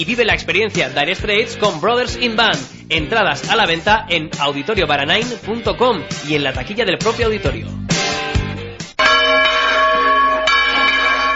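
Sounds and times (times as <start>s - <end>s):
speech: 0.0s - 7.9s
church bells ringing: 9.0s - 11.3s.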